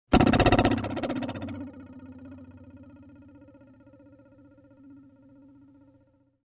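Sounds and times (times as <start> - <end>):
arrow trembling stuck in a tree: 0.1 - 5.0.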